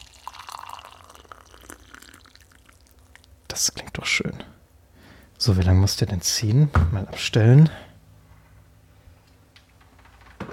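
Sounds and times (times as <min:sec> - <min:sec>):
hot water poured into tea cup: 0:00.0 - 0:03.3
speech: 0:03.6 - 0:04.6, 0:05.4 - 0:07.9.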